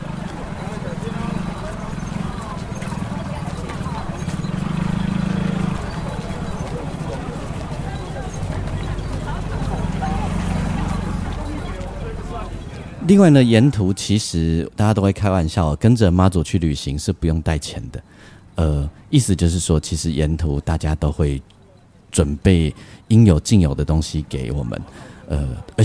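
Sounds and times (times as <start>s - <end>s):
many people's rapid footsteps on a pilgrimage: 0.0s - 13.4s
indistinct crowd voices: 0.0s - 14.6s, 17.9s - 25.8s
speech: 13.1s - 25.8s.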